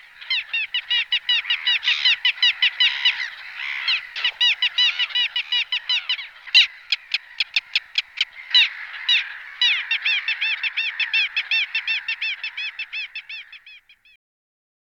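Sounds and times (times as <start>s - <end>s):
little gull Larus minutus giving short sharp kek calls: 0.0s - 14.0s.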